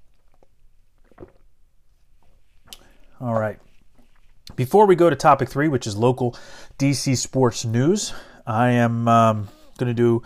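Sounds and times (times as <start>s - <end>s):
swallowing: 0.0s - 1.6s
person sipping water: 0.0s - 4.5s
speech: 3.2s - 3.7s, 4.6s - 10.2s.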